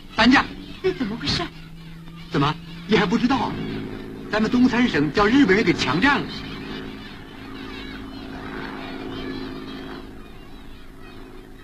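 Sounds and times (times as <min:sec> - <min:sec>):
Japanese warplanes droning overhead with propeller hum: 0:00.0 - 0:11.6
speech: 0:00.2 - 0:01.6, 0:02.3 - 0:03.7, 0:04.3 - 0:06.5.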